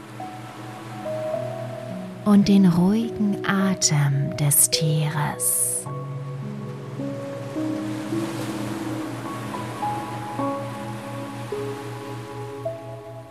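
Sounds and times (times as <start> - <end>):
ocean waves rushing: 0.0 - 2.3, 5.0 - 13.2
speech: 2.3 - 6.1.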